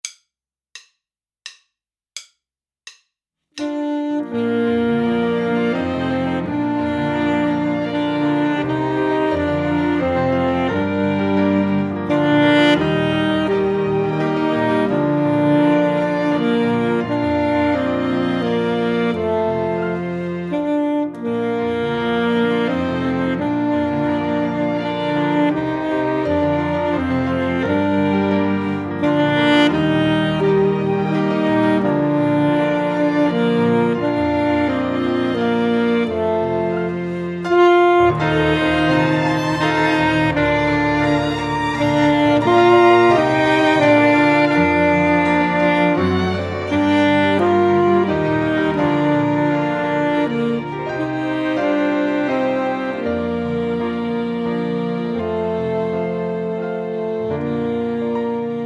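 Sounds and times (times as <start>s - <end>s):
student saxophone duo: 3.6s - 58.6s.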